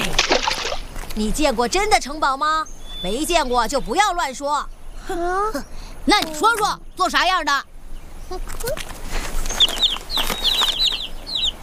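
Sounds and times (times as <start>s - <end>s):
steady hiss: 0.0s - 11.6s
speech: 1.2s - 7.7s, 8.3s - 8.9s
baby chicks cheeping: 9.3s - 11.6s.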